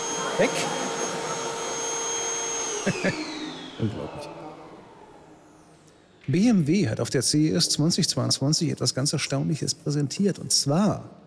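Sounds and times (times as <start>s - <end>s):
laughter: 0.0s - 1.8s, 2.7s - 4.0s
robot vacuum cleaner humming with motor whine: 0.0s - 5.8s
speech: 0.4s - 0.8s, 2.8s - 4.4s, 6.3s - 11.2s.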